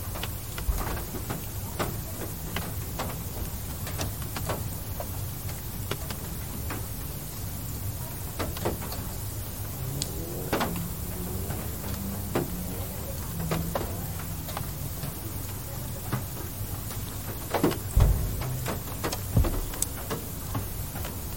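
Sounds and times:
light rain at night: 0.0s - 21.3s
low rumble of traffic: 0.0s - 21.3s
sharp drips: 0.2s - 21.3s
vehicle passing: 8.7s - 15.8s.

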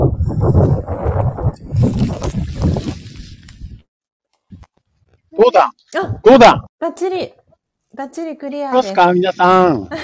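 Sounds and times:
strong wind roaring against the microphone: 0.0s - 3.9s
speech: 5.6s - 7.4s, 8.0s - 10.0s.

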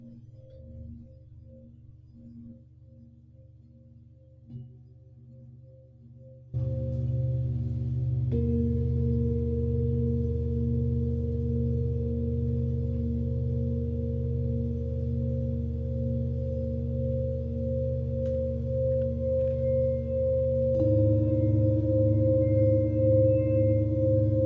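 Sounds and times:
Tibetan singing bowls ringing: 6.5s - 24.4s.

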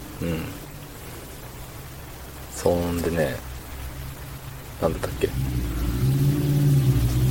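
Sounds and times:
speech: 0.2s - 0.6s, 2.6s - 3.5s, 4.8s - 6.0s
motorcycle engine revving outside: 5.2s - 7.2s.

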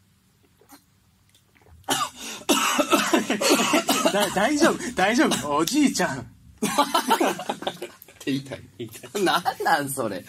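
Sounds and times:
person coughing violently after drinking water: 1.9s - 5.6s
speech: 3.2s - 10.2s
laughter: 6.6s - 9.6s.

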